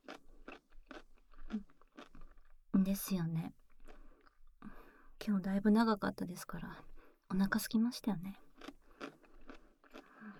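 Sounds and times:
crunchy chewing of food: 0.0s - 2.7s, 3.5s - 5.0s, 8.4s - 10.3s
speech: 2.8s - 3.6s, 5.2s - 8.7s.

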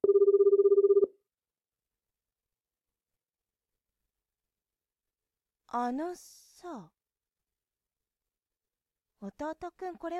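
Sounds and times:
smartphone ringing with a warbling electronic trill: 0.0s - 1.2s
speech: 5.7s - 7.0s, 9.2s - 10.1s.

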